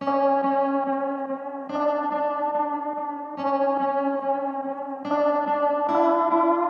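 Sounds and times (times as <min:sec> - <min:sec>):
guitar melody loop in F sharp minor: 0:00.0 - 0:06.6.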